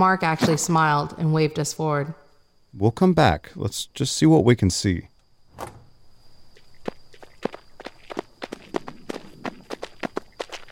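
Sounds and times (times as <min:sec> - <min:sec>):
speech: 0:00.0 - 0:05.8
footsteps of several people running: 0:06.6 - 0:10.7.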